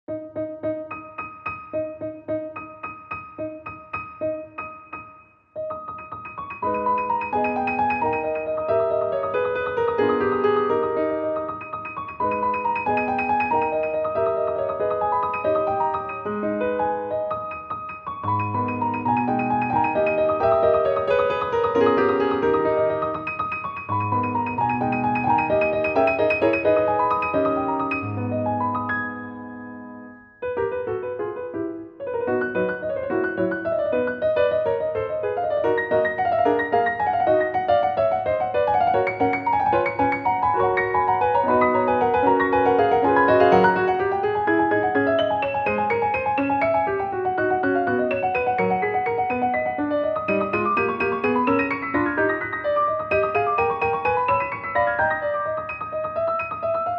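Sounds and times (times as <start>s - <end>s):
piano piece: 0.0s - 56.9s.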